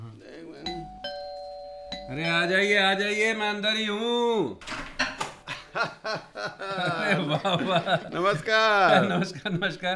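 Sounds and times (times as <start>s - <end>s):
two-tone doorbell chime: 0.7s - 2.4s
speech: 2.1s - 4.8s, 5.8s - 9.9s
laughter: 5.0s - 9.9s.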